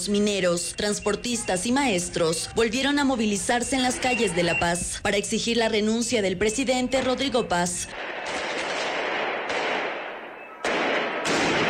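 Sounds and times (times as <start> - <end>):
speech: 0.0 - 8.4
firecracker blasts during a street protest march: 7.0 - 11.6.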